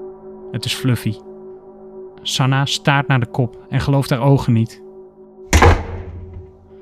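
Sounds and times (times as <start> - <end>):
speech: 0.5 - 1.3, 2.2 - 4.8
bedroom door slamming shut: 5.5 - 6.6.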